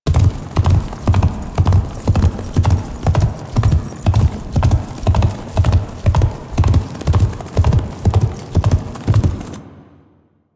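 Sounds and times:
galloping hooves: 0.1 - 9.6.

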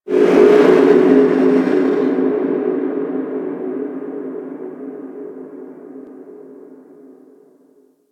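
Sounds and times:
large moon creature ambience: 0.0 - 3.7.

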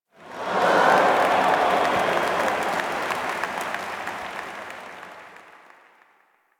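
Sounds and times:
amphitheatre crowd reacting in surprise: 0.3 - 3.2.

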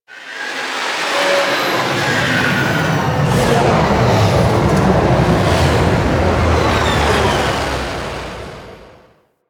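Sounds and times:
fighter spaceship thruster during lift off and landing: 0.9 - 9.2.

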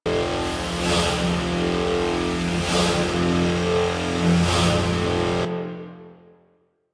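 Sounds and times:
ship coolant machine running: 0.1 - 5.5.

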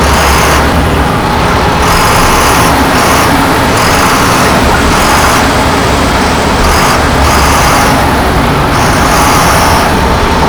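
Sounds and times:
armoured personnel carrier moving: 0.0 - 10.4.

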